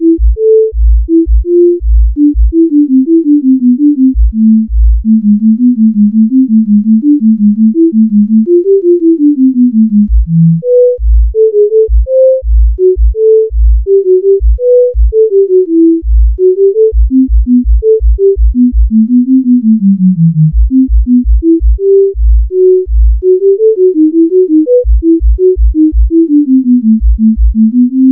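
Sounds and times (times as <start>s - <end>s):
sine tone: 0.0s - 28.1s.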